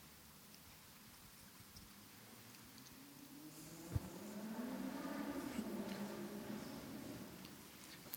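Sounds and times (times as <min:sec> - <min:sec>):
car driving past with low engine hum: 0:02.8 - 0:08.0.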